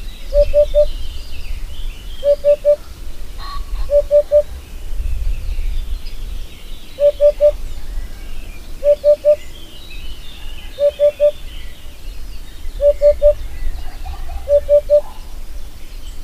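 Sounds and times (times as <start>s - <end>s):
faint background noise: 0.0s - 16.2s
Eurasian hoopoe hooting low soft triple notes: 0.3s - 0.9s, 2.2s - 4.8s, 7.0s - 7.6s, 8.8s - 9.4s, 10.4s - 11.4s, 12.8s - 15.4s.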